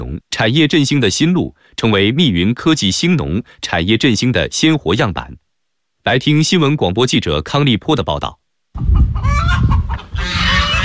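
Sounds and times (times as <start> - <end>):
speech: 0.4 - 5.4, 6.0 - 10.4
chickens clucking in a poultry pen on a farm cooperative in Miyun, Beijing: 8.8 - 10.8.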